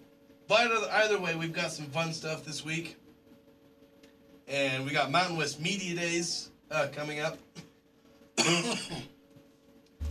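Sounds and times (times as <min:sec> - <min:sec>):
faint room hum: 0:00.0 - 0:10.1
speech: 0:00.5 - 0:03.0, 0:04.5 - 0:07.6, 0:08.4 - 0:09.2
person coughing: 0:08.4 - 0:09.2.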